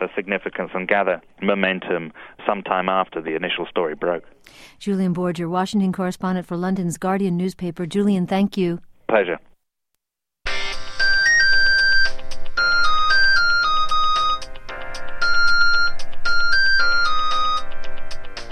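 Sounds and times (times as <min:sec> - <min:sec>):
speech: 0:00.0 - 0:09.5
cell phone ringtone playing a rock tune in electronic tones: 0:10.5 - 0:18.4.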